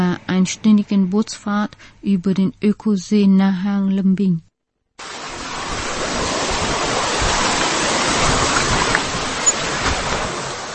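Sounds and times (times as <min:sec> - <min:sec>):
speech: 0:00.1 - 0:05.2
multi-tiered waterfall roar: 0:05.0 - 0:10.7.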